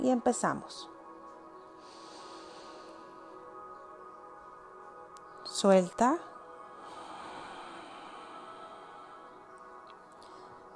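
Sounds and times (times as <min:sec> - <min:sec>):
speech: 0:00.0 - 0:00.9, 0:05.6 - 0:06.3
deep inhale through the nose during a deep-breathing exercise: 0:01.8 - 0:03.3, 0:06.8 - 0:09.6.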